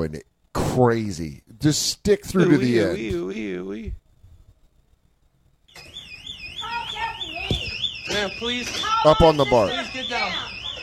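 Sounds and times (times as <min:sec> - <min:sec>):
speech: 0:00.0 - 0:03.7, 0:08.2 - 0:10.4
electronic alarm in a video blaring a warbling sweeping tone: 0:05.7 - 0:10.8.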